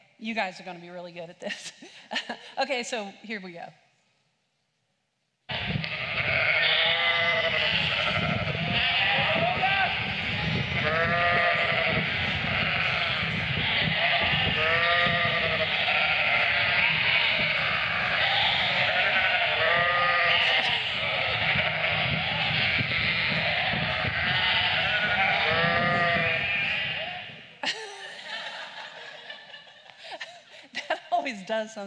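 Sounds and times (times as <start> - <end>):
speech: 0.2 - 3.8, 31.5 - 31.8
several voices imitating sheep bleating: 5.5 - 27.5
people laughing: 27.6 - 31.1.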